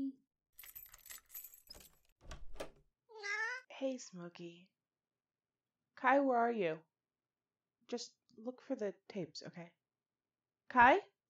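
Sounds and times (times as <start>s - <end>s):
keys jangling: 0.6s - 2.7s
speech: 3.8s - 4.8s, 6.0s - 6.9s, 7.9s - 9.8s, 10.7s - 11.1s.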